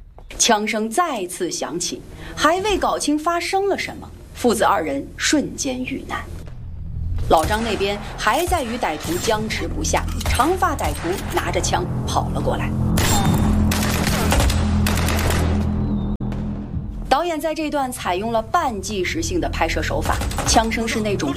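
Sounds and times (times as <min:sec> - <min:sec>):
voices talking: 0:00.4 - 0:06.3, 0:07.3 - 0:13.2, 0:17.1 - 0:21.3
chaotic din: 0:06.5 - 0:21.3
bursts of muffled abrupt gunfire: 0:13.7 - 0:15.6.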